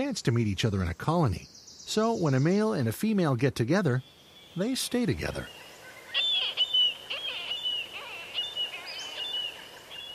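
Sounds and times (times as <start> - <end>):
speech: 0.0 - 6.2
soft steady hiss: 0.0 - 10.1
marbled murrelet calls: 4.0 - 10.1.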